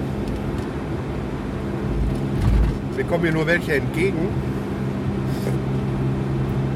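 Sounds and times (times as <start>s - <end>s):
car cabin engine and road drone while driving: 0.0s - 6.7s
speech: 3.0s - 4.5s
faint tire hiss: 5.2s - 5.6s.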